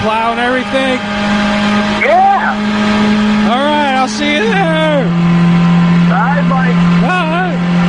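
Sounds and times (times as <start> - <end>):
speech: 0.0 - 5.4
voice imitating a revving truck engine: 1.9 - 2.6, 3.4 - 5.1, 6.0 - 7.7.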